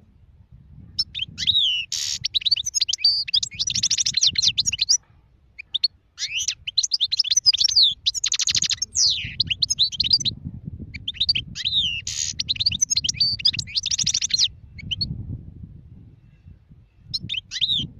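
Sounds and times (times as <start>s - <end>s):
European goldfinch singing with twittering, chirps and buzzy trills: 1.0s - 10.4s, 10.9s - 15.1s, 17.1s - 17.9s.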